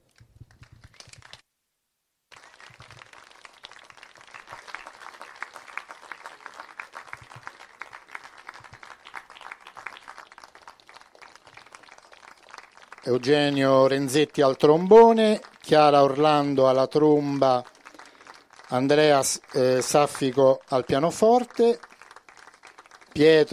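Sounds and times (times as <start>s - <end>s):
audience applause from a sizable crowd welcoming a jazz quintet: 2.3s - 23.5s
speech: 13.1s - 17.7s, 18.7s - 21.9s, 23.2s - 23.5s.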